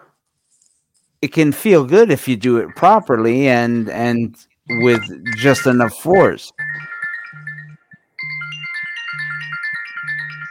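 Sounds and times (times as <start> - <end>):
speech: 1.2 - 7.5
mobile phone ringtone with electronic melody over pulsing low beat: 4.7 - 10.4.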